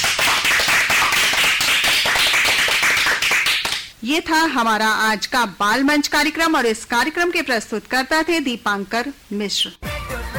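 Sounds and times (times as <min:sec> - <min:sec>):
crowd applauding: 0:00.0 - 0:03.9
speech: 0:04.0 - 0:09.9.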